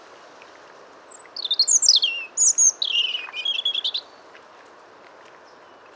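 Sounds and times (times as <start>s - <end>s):
European robin Erithacus rubecula singing: 1.0s - 4.0s.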